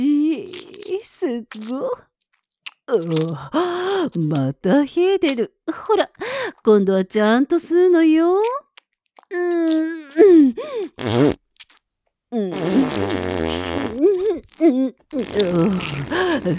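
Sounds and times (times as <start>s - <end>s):
speech: 1.3s - 2.1s, 2.9s - 8.6s, 9.3s - 11.4s, 12.3s - 16.5s
loud buzzy farts: 11.0s - 11.8s, 12.5s - 14.6s, 15.2s - 16.5s.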